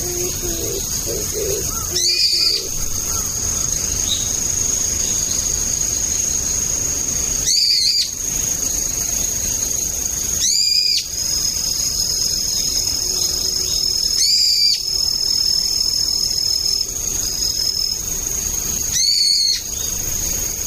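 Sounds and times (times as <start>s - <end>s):
brown-eared bulbul shrill screechy calls in autumn: 0.0s - 5.4s, 7.4s - 8.2s, 10.4s - 11.1s, 18.9s - 19.9s
continuous high insect-like drone: 0.0s - 20.6s.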